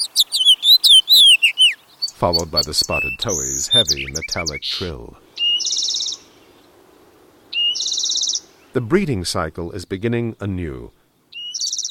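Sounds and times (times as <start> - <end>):
male house finch singing rich jumbled warble: 0.0 - 6.3, 7.5 - 8.5
speech: 2.2 - 5.2, 8.8 - 11.0.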